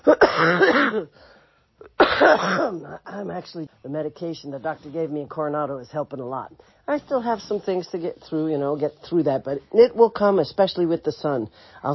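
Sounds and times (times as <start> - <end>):
person coughing with a raspy voiced hack: 0.0 - 1.2, 1.8 - 3.2
speech: 0.9 - 11.9.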